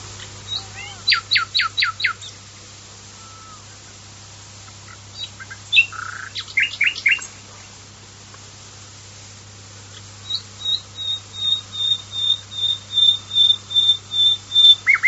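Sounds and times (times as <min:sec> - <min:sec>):
Common nightingale song with loud repeated notes whistles and chirps: 0:00.2 - 0:02.4, 0:05.1 - 0:07.3, 0:10.2 - 0:15.0.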